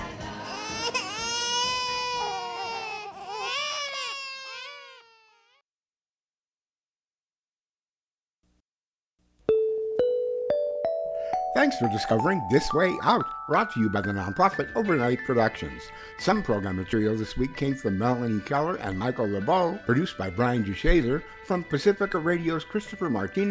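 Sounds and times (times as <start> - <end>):
infant babies crying: 0.4 - 5.6
short bright musical tone: 9.5 - 15.8
speech: 11.6 - 23.4.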